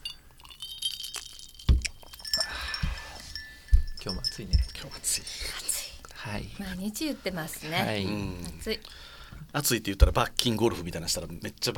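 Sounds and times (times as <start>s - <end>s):
faint rattling and handling noise: 0.0s - 5.2s
glasses clinking in a toast: 0.0s - 5.5s
speech: 4.4s - 11.7s.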